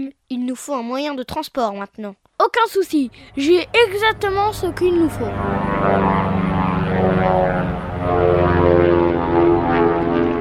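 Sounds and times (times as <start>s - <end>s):
speech: 0.0s - 6.4s
propeller airplane engine droning as the plane flies by: 3.1s - 10.4s.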